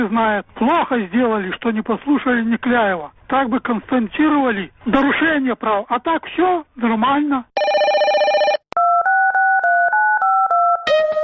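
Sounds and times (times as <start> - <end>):
speech: 0.0 - 7.5
touch-tone dialing of a telephone number: 7.6 - 10.9.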